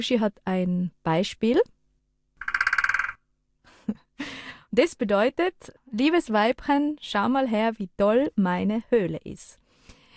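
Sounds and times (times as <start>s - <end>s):
speech: 0.0s - 1.8s, 3.9s - 9.6s
woodpecker knocking on its nest cavity: 2.4s - 3.2s.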